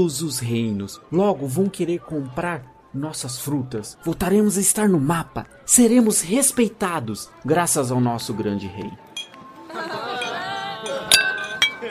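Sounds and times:
speech: 0.0s - 9.1s
murmur of tavern patrons' voices: 0.0s - 11.9s
glasses clinking in a tavern: 9.2s - 9.4s, 10.1s - 11.9s
laughter: 9.6s - 11.9s.

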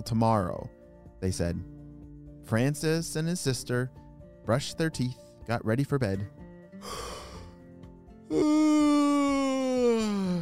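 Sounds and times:
speech: 0.0s - 1.8s, 2.4s - 7.2s, 8.3s - 8.9s
exaggerated yawn with breathy inhale and drawn-out voiced groan: 6.8s - 7.6s, 8.3s - 10.4s.

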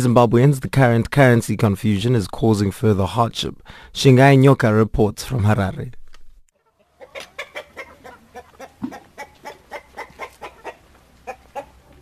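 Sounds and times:
speech: 0.0s - 6.0s
chickens clucking in a coop in Zimbabwe: 6.5s - 11.9s.

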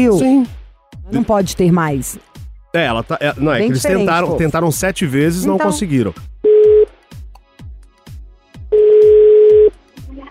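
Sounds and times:
speech: 0.0s - 6.3s
telephone ringing tone of a call being placed: 6.5s - 6.9s, 8.7s - 9.7s.

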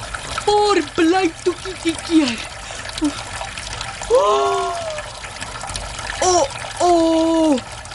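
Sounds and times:
water running from a tap into a kitchen washbasin: 0.0s - 7.9s
speech: 0.5s - 3.3s, 4.1s - 4.8s
person shouting: 4.1s - 5.1s, 6.2s - 7.6s.

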